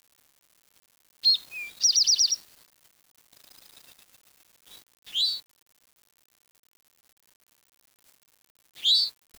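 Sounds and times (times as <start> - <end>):
bird chirping: 1.2 - 2.4, 5.1 - 5.4, 8.8 - 9.1.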